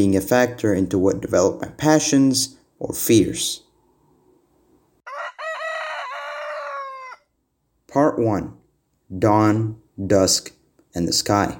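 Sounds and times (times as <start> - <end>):
speech: 0.0 - 3.6, 7.9 - 11.5
rooster crowing: 5.0 - 7.4.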